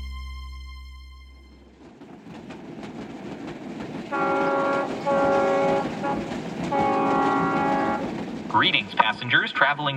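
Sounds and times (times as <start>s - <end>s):
train rumbling past: 1.3s - 9.9s
train horn blasts: 4.1s - 8.1s
speech: 9.1s - 9.9s.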